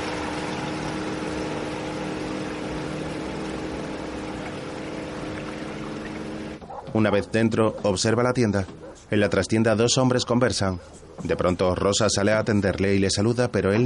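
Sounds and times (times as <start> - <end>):
small boat engine droning on a river: 0.0 - 6.8
speech: 6.9 - 13.8.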